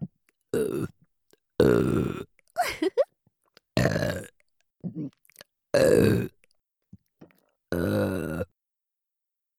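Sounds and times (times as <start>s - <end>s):
loud drawn-out burps: 0.6s - 0.9s, 1.6s - 2.3s, 3.8s - 5.2s, 5.8s - 6.4s, 7.7s - 8.5s.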